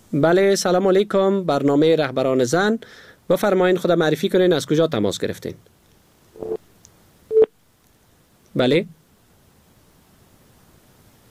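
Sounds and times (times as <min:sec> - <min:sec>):
speech: 0:00.1 - 0:05.7, 0:08.6 - 0:09.0
telephone busy tone after a call drops: 0:06.4 - 0:06.6, 0:07.3 - 0:07.5.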